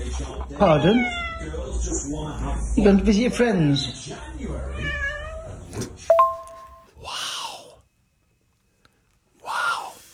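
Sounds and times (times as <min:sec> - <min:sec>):
speech: 0:00.2 - 0:05.0
cat meowing: 0:04.7 - 0:05.5.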